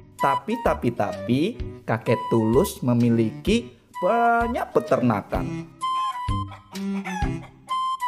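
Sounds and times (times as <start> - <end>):
speech: 0.2 - 5.7
rooster crowing on a farm: 5.9 - 7.9.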